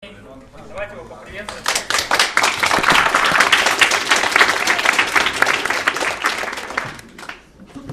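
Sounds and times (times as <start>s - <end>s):
audience applause: 1.5s - 7.5s.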